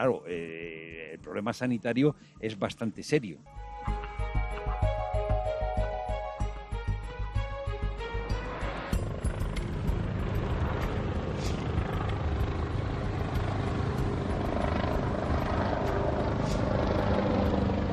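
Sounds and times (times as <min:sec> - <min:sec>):
speech: 0:00.0 - 0:03.7
helicopter engine roar and whine passing by: 0:04.3 - 0:17.9
large and small helicopters flying in and out of a valley: 0:08.1 - 0:17.9.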